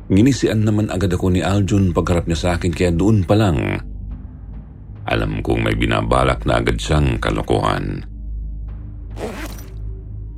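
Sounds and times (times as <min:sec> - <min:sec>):
speech: 0:00.1 - 0:03.9, 0:05.0 - 0:08.1
bag zipper being pulled open: 0:09.1 - 0:09.8.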